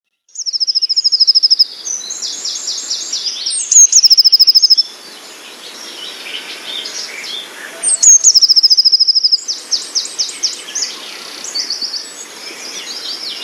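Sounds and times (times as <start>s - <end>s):
Eurasian blue tit fast high trill: 0.3s - 5.0s, 7.8s - 10.9s
faint hiss: 0.3s - 13.4s
Eurasian blue tit scratchy chattering run: 0.5s - 1.6s, 3.7s - 4.8s, 8.0s - 9.4s.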